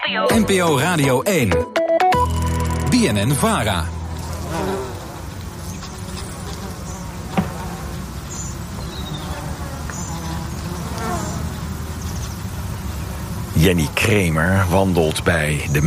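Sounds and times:
speech: 0.1s - 1.8s, 2.9s - 4.0s, 13.6s - 15.8s
bees and bumblebees buzzing around flowers: 3.4s - 15.8s.

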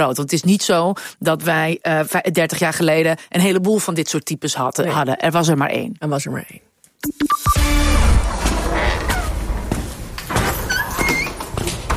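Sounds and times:
speech: 0.0s - 8.3s
treasure room door creaking open: 7.8s - 11.9s.

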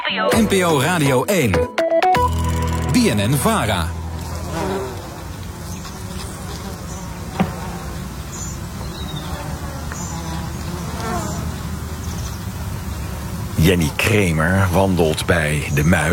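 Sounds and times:
speech: 0.1s - 1.8s, 2.9s - 4.0s, 13.7s - 16.0s
bumblebees and bees buzzing around flowers: 3.5s - 14.7s.

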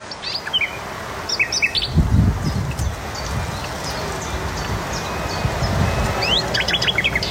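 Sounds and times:
nightingale singing in coastal dunes at Noordwijk Netherlands: 0.0s - 7.3s
other birds calling: 0.0s - 7.3s
low rumbling thumps: 1.9s - 6.4s.

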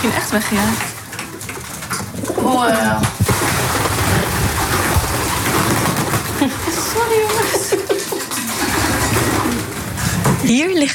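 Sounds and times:
speech: 0.0s - 0.9s, 2.5s - 3.2s, 10.4s - 10.9s
faint rustle of pigeon wings and movement: 0.3s - 10.3s
pigeons cooing in a loft with nesting boxes: 1.9s - 3.2s, 7.4s - 10.3s.

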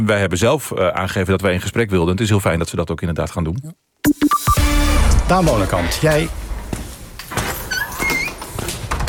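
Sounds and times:
speech: 0.0s - 4.2s, 5.3s - 6.4s
door creaking open with squeaking hinge: 7.2s - 9.0s.

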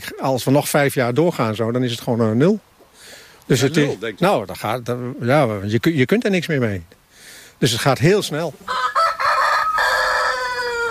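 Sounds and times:
speech: 0.2s - 2.7s, 3.5s - 7.0s, 7.6s - 8.9s
small-animal breeder's rooster crowing loudly: 8.7s - 10.8s.

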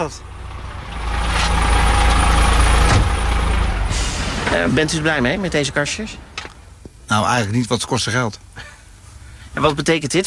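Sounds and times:
speech: 0.0s - 0.3s, 4.5s - 6.3s, 7.1s - 8.7s, 9.6s - 10.2s
transport company truck engine idling: 0.0s - 10.2s.

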